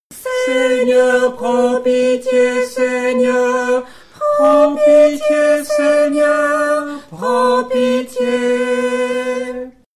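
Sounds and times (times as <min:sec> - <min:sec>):
tenor singing a liturgical piece: 0:00.1 - 0:09.9.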